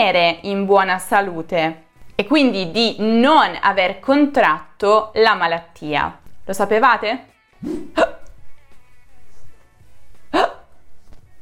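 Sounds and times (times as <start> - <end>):
speech: 0.0 - 8.0
hiccups: 7.6 - 8.4, 10.3 - 10.8.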